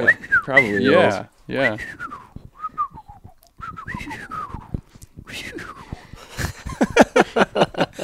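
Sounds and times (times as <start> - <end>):
person whistling an imitation of a bald eagle call: 0.0 - 0.9, 1.6 - 6.1
speech: 0.0 - 2.2
laughter: 5.6 - 8.0.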